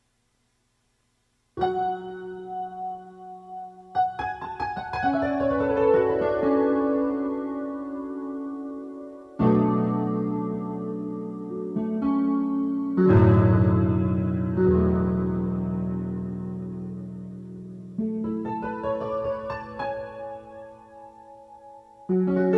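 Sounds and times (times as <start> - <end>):
piano: 1.5 - 22.5.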